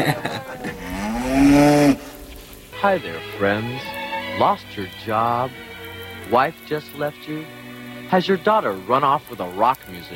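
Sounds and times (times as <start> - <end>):
speech: 0.0 - 0.4, 2.8 - 5.7, 6.3 - 10.1
laughter: 0.0 - 1.6
cow mooing: 0.6 - 2.5
low thumps and rustling: 0.6 - 2.8.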